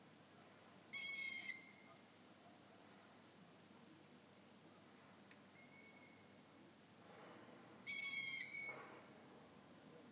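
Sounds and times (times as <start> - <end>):
female long-eared owl uttering a shrill level squeak: 1.0 - 1.7, 7.9 - 8.7.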